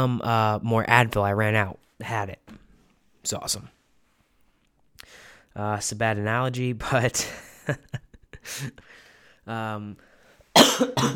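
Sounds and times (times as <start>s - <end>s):
speech: 0.0s - 2.4s, 3.2s - 3.8s, 5.0s - 11.1s
person coughing: 10.6s - 11.1s.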